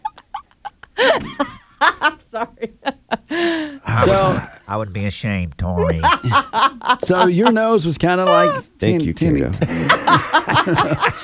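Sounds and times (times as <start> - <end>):
laughter: 0.0 - 4.9, 5.6 - 8.7, 9.3 - 11.2
speech: 1.0 - 11.2
woman imitating a duck quacking: 8.3 - 8.7.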